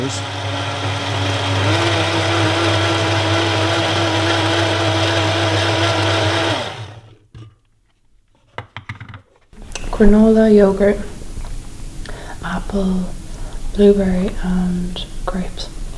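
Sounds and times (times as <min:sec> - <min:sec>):
kitchen blender running at full speed: 0:00.0 - 0:07.2
speech: 0:00.1 - 0:00.4, 0:10.0 - 0:11.2, 0:12.7 - 0:13.2, 0:13.8 - 0:15.7.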